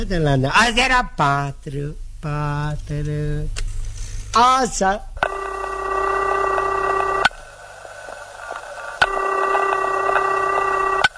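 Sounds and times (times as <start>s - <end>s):
speech: 0.0s - 3.6s, 4.4s - 5.1s
telephone ringing tone: 5.2s - 7.4s, 9.0s - 11.1s.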